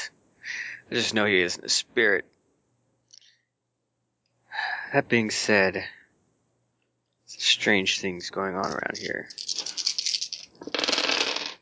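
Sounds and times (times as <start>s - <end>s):
speech: 0.9s - 2.3s, 4.9s - 6.0s, 7.4s - 9.4s
dice rolling across a hard surface: 8.6s - 11.5s.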